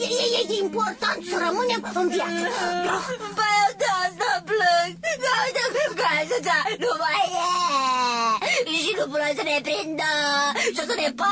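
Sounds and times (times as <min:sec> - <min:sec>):
speech: 0:00.0 - 0:11.2
person crying and wailing: 0:01.8 - 0:08.6.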